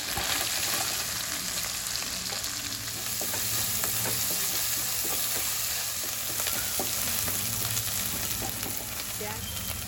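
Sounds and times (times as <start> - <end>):
onions sizzling and crackling in a hot pan: 0.0 - 9.8.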